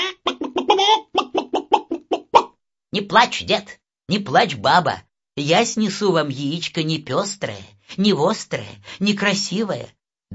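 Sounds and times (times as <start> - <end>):
hen clucking: 0.0 - 2.5
speech: 3.0 - 10.3.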